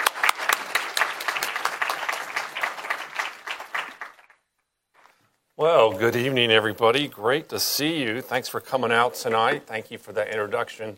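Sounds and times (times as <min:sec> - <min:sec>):
room full of people applauding: 0:00.0 - 0:04.4
speech: 0:05.6 - 0:10.9.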